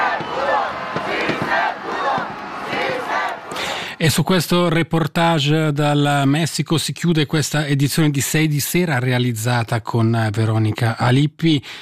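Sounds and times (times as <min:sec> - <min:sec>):
large crowd in Mexico chanting in celebration: 0:00.0 - 0:04.0
speech: 0:04.0 - 0:11.7.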